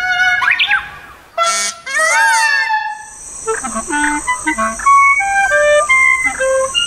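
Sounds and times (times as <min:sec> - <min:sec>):
bird song: 0:00.2 - 0:01.1, 0:03.0 - 0:06.8
steady high buzzing drone: 0:01.4 - 0:06.8.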